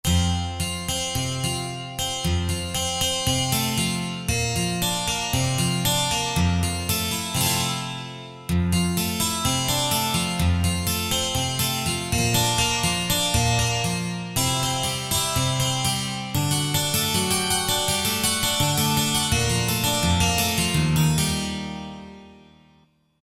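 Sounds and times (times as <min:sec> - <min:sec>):
synthesizer 12 string guitar factory patch: 0:00.0 - 0:23.0.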